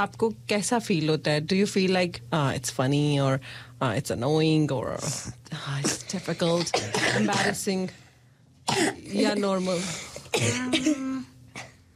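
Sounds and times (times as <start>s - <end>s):
speech: 0.0s - 8.0s, 8.7s - 11.1s
person coughing: 5.8s - 7.7s, 8.7s - 11.9s.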